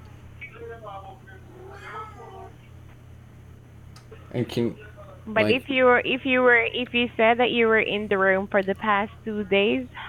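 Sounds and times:
steady low electrical hum: 0:00.0 - 0:10.0
speech: 0:00.8 - 0:02.7, 0:04.1 - 0:10.0
cat meowing in a hotel room: 0:01.5 - 0:02.6.

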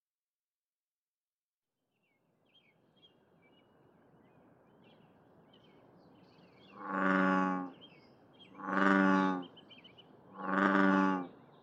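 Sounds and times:
American bullfrog giving deep droning harmonic calls in the morning: 0:06.7 - 0:07.8, 0:08.6 - 0:09.5, 0:10.4 - 0:11.3.

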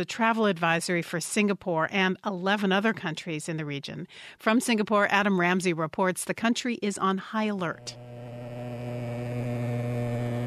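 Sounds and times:
speech: 0:00.0 - 0:08.1
motorized fogging machine spraying insecticide against mosquitoes: 0:07.8 - 0:10.4.

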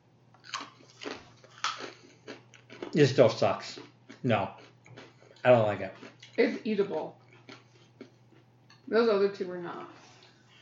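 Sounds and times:
cracker being eaten during a tasting: 0:00.4 - 0:06.4, 0:07.2 - 0:08.9
speech: 0:02.9 - 0:04.6, 0:05.4 - 0:07.2, 0:08.9 - 0:10.0.

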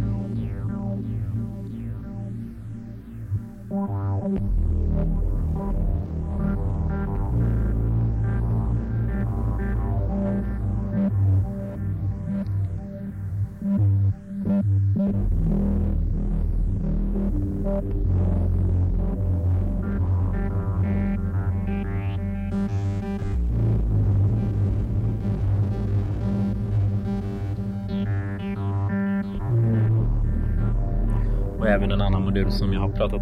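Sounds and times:
warbling lo-fi synth with pedal wobble and cut high frequencies: 0:00.0 - 0:33.1
speech: 0:04.3 - 0:04.6, 0:31.8 - 0:33.1.

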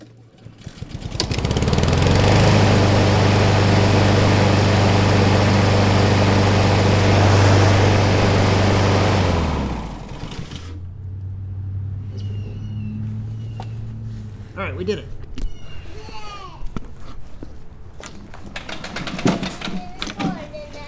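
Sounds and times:
lawnmower engine running: 0:00.0 - 0:10.7, 0:18.4 - 0:20.2
speech: 0:14.8 - 0:15.1.

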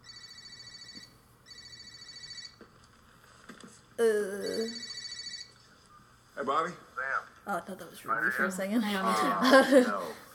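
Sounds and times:
cell phone ringtone: 0:00.0 - 0:02.6, 0:04.7 - 0:05.6
speech: 0:04.0 - 0:04.9, 0:06.4 - 0:10.2
laughter: 0:08.8 - 0:10.3.

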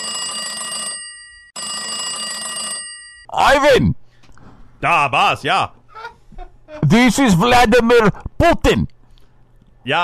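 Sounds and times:
telephone ringing with a bright jangling bell tone: 0:00.0 - 0:03.3
speech: 0:03.3 - 0:04.0, 0:04.8 - 0:05.8, 0:06.7 - 0:08.9, 0:09.8 - 0:10.0.

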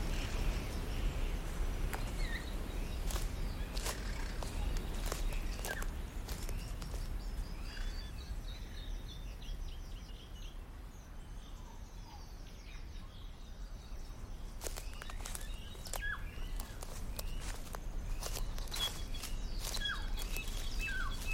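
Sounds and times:
faint insect hum: 0:00.0 - 0:21.3
footsteps crunching over dry grass and small leaves outdoors: 0:00.8 - 0:08.0, 0:14.3 - 0:21.3
thin bird chirps: 0:02.0 - 0:10.4, 0:11.4 - 0:21.3.

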